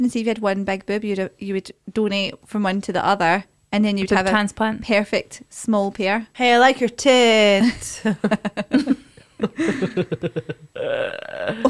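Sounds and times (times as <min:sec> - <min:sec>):
speech: 0:00.0 - 0:11.6
laughter: 0:08.0 - 0:10.7
loud drawn-out belch: 0:10.8 - 0:11.6.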